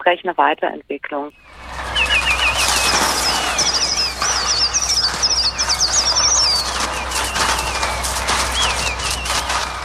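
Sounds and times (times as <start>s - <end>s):
speech: 0.0s - 1.7s
Trautonium synthesizer continuous rushing flutter like beating wings: 1.4s - 9.8s
Trautonium electronic synthesizer imitating a dense flock of birds chirping: 1.9s - 9.5s.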